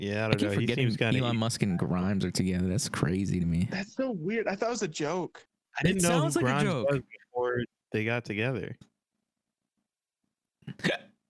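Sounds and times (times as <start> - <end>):
speech: 0.0 - 8.9, 10.7 - 11.1
person hiccuping: 10.6 - 11.2.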